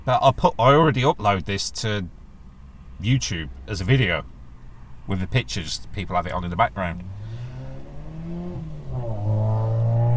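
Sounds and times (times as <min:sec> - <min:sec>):
speech: 0:00.0 - 0:02.2, 0:03.0 - 0:04.3, 0:05.1 - 0:07.2
car with thin underpowered engine accelerating past: 0:07.0 - 0:10.1.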